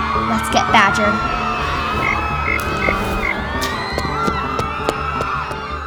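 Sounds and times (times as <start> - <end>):
speech: 0.2 - 2.9
frogs croaking with warbling calls and clicking pulses: 1.2 - 5.6.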